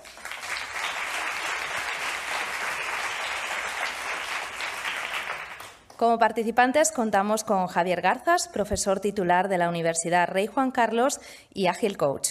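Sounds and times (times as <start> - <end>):
audience applauding moderator of a panel discussion: 0.0 - 5.8
speech: 6.0 - 12.3.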